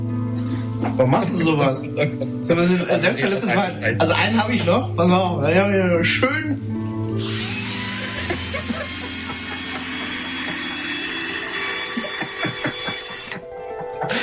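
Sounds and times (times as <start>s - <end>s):
speech: 0.8s - 7.4s
laughter: 1.4s - 2.4s, 3.0s - 4.1s, 7.9s - 10.8s, 11.8s - 14.2s
cordless screwdriver drill running at a constant speed: 7.2s - 13.4s.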